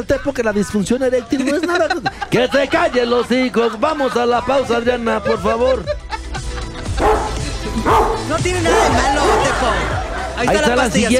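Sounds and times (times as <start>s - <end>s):
speech: 0.0s - 6.1s, 7.6s - 11.1s
laughter: 1.0s - 11.1s
dog barking with short sharp yelps: 7.0s - 9.8s.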